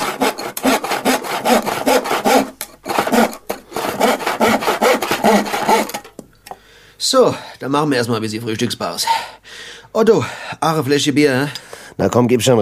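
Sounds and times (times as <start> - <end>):
hand saw cutting wood in a carpentry workshop: 0.0 - 6.2
speech: 7.1 - 9.4, 10.0 - 12.6.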